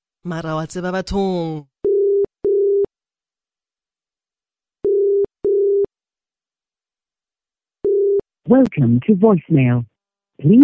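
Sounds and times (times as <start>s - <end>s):
speech: 0.2s - 1.7s, 8.5s - 10.6s
ringback tone on an outgoing telephone call: 4.8s - 5.9s, 7.8s - 8.2s.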